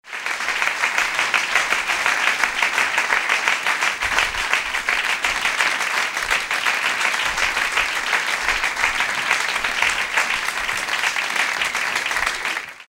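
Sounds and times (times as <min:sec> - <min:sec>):
medium applause: 0:00.0 - 0:12.8.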